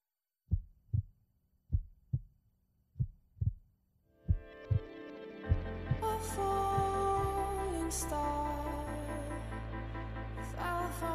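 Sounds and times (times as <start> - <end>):
heartbeat rhythm opening a song: 0.5 - 1.1, 1.7 - 2.3, 3.0 - 3.6, 4.3 - 4.9, 5.5 - 6.1, 6.7 - 7.4
layered instruments: 4.3 - 11.0.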